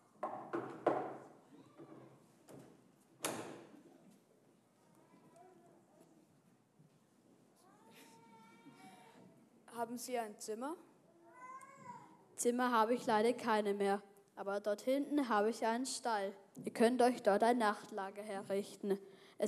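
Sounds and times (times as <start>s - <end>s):
knocking on a door: 0.2s - 1.2s
speech: 9.8s - 10.9s, 12.4s - 19.4s.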